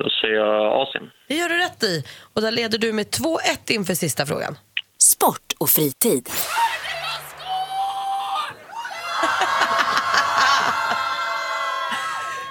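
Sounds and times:
speech: 0.0 - 6.8
women's football team shouting, shrieking and laughing in a locker room: 6.4 - 12.4.

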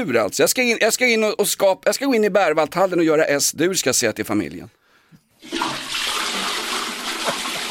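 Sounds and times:
speech: 0.0 - 4.8
toilet flushing with gurgling swirls: 5.4 - 7.6.

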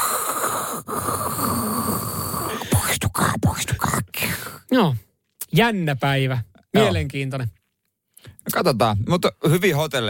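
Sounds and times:
voice imitating heavy hissing breathing through a respirator mask: 0.0 - 4.7
speech: 4.7 - 7.6, 8.5 - 10.0.

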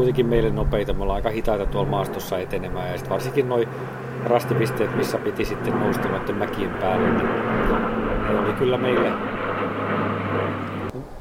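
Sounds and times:
speech: 0.0 - 10.7
low droning hum: 0.0 - 10.9
airplane passing overhead: 0.0 - 11.0.

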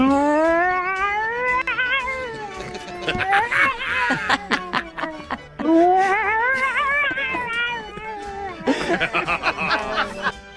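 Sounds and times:
woman imitating a yowling mother cat: 0.0 - 8.7
bursts of laughter: 2.5 - 10.4.

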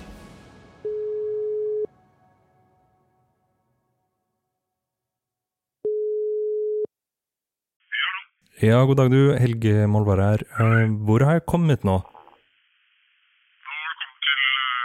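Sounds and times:
telephone ringback tone on an outgoing call: 0.9 - 1.9, 5.8 - 6.9
speech: 8.6 - 12.1.

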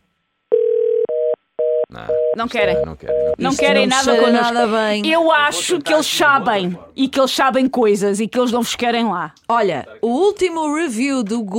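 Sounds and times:
telephone ringing tone on a call: 0.5 - 4.0
speech: 2.0 - 11.5.

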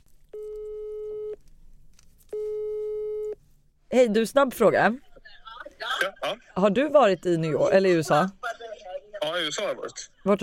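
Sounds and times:
telephone ringing tone on a telephone line while a call is placed: 0.4 - 1.4, 2.4 - 3.4
speech: 3.9 - 5.1, 6.0 - 8.4, 9.3 - 10.4.

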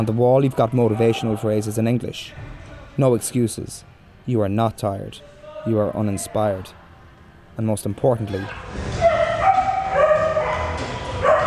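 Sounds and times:
speech: 0.0 - 6.8, 7.6 - 9.1
dog barking and yelping inside a mixed martial arts gym: 8.5 - 11.4.

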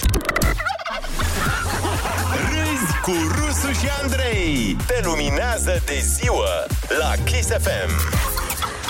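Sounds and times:
turkeys gobbling: 0.4 - 3.3
laughter: 0.4 - 4.4
speech: 3.1 - 8.3.

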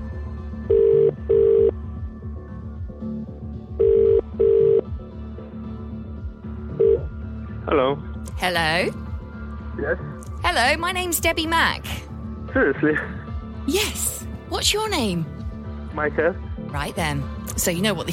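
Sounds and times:
British double-burr ringback tone of an outgoing phone call: 0.7 - 1.7, 3.8 - 4.9, 6.7 - 7.1
speech: 7.7 - 9.0, 9.8 - 15.4, 15.9 - 18.1.

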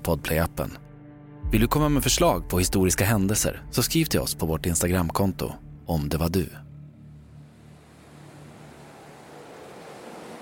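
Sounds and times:
speech: 0.0 - 0.8, 1.5 - 6.7
stormy Atlantic Ocean waves crashing: 7.3 - 10.4.

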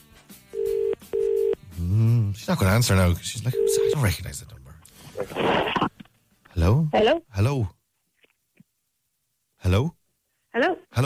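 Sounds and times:
telephone ringback tone on an outgoing call: 0.6 - 1.6, 3.5 - 4.0
speech: 2.5 - 6.0, 6.6 - 7.8, 9.6 - 10.0, 10.6 - 11.0.

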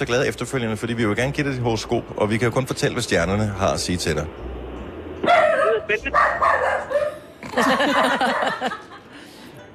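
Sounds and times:
speech: 0.0 - 4.6, 5.9 - 7.0, 7.6 - 8.9
dog barking indoors: 5.2 - 7.2
laughter: 7.4 - 9.3.

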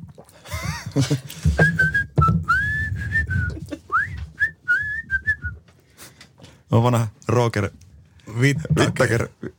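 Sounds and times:
faint noise: 0.0 - 9.5
speech: 1.0 - 1.9, 6.7 - 7.8, 8.4 - 9.5
person whistling a short melody: 1.6 - 5.6.

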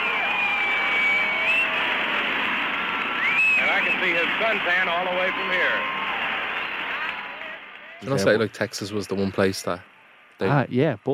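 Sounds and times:
shrill whistle: 0.0 - 1.9, 3.1 - 4.2
large crowd cheering and yelling at an airfield: 0.0 - 10.4
speech: 3.8 - 6.0, 8.0 - 11.1.

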